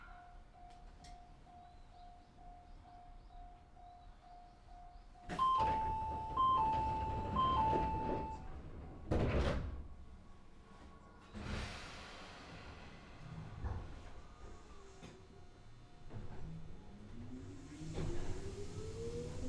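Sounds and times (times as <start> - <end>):
train doors sliding shut: 5.3 - 10.3, 11.2 - 15.4, 17.6 - 19.4.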